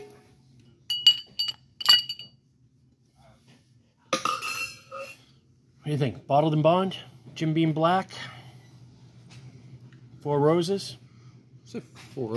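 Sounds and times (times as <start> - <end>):
ice cube clinking into a cocktail glass: 0.9 - 2.3
speech: 5.9 - 8.3, 10.2 - 11.0, 11.7 - 12.3.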